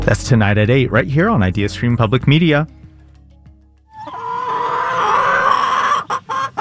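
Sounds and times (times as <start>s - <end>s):
speech: 0.1s - 2.8s
chicken clucking: 4.0s - 6.5s.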